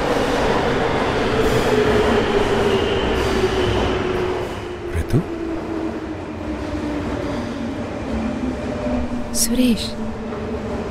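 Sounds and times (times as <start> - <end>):
metro train rumbling at a station: 0.0 - 10.8
speech: 9.4 - 10.2.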